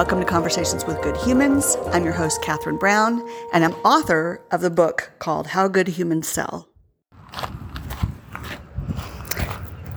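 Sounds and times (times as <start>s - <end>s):
speech: 0.0s - 6.7s
footsteps crunching on gravel outdoors: 7.2s - 9.9s.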